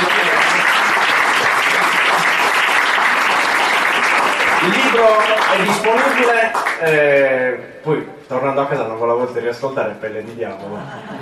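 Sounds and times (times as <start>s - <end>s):
audience applause: 0.0s - 7.0s
speech: 5.0s - 11.2s
laughter: 10.6s - 11.2s.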